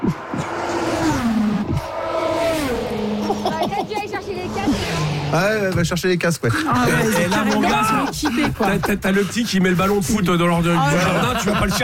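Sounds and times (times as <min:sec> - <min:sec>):
car passing at 300 km/h with loud engine whine: 0:00.0 - 0:05.8
speech: 0:00.1 - 0:00.3, 0:05.3 - 0:11.8
laughter: 0:03.2 - 0:04.3, 0:06.4 - 0:11.8.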